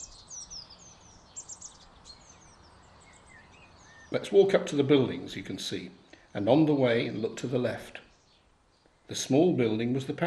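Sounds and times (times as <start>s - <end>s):
birds chirping and trilling: 0.0s - 10.2s
soft wind: 0.0s - 10.2s
speech: 4.1s - 8.0s, 9.1s - 10.2s.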